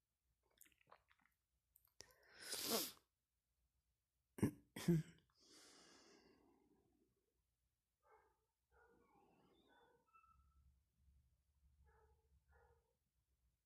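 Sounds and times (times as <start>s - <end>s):
calm breath in through the nose during a relaxation exercise: 2.0s - 3.0s, 5.4s - 6.6s
sharp abrupt breath bursts: 2.2s - 3.0s.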